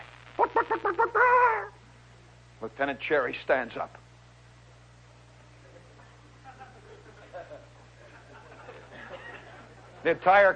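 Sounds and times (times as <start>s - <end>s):
faint low hum: 0.0s - 10.5s
laughter: 0.4s - 1.7s, 5.6s - 10.1s
soldier imitating a chicken laying an egg: 0.4s - 1.8s
speech: 2.6s - 4.0s, 10.0s - 10.5s.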